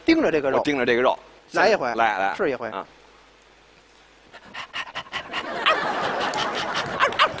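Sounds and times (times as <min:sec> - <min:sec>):
speech: 0:00.1 - 0:03.0
person imitating a dog with quick breathy pants: 0:04.4 - 0:05.5
laughter: 0:05.2 - 0:07.3.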